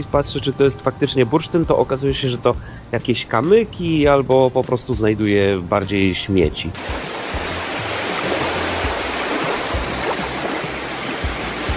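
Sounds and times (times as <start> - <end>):
speech: 0.0 - 7.1
sea waves on the shore: 6.8 - 11.7.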